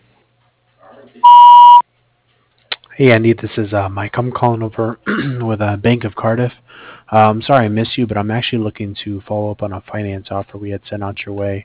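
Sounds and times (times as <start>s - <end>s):
speech: 1.0s - 1.8s, 3.0s - 11.6s
voicemail tone electronic beep: 1.2s - 1.8s.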